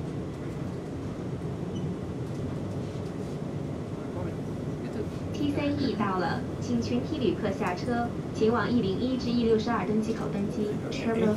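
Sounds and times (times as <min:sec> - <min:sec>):
airport terminal shuttle train rumbling, heard from inside the car: 0:00.0 - 0:11.3
speech: 0:05.5 - 0:11.3.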